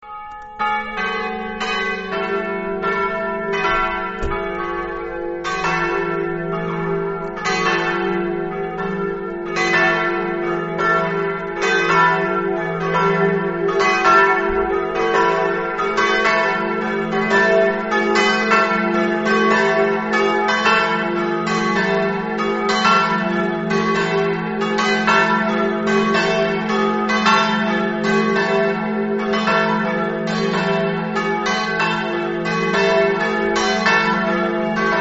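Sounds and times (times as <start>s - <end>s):
bells in Ipplis: 0.0s - 34.9s.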